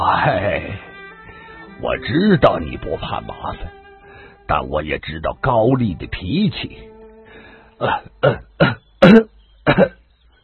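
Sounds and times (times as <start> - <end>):
speech: 0.2 - 0.9, 1.8 - 3.8, 4.5 - 6.9, 7.8 - 10.0
man gasping between coughs: 4.0 - 4.4, 7.2 - 8.5
man coughing harshly in a coughing fit: 7.8 - 10.0.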